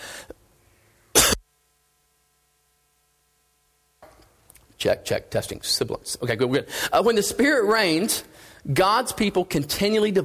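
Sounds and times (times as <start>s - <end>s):
faint hum: 0.0s - 10.2s
person coughing loudly: 1.2s - 1.4s
speech: 4.8s - 10.2s.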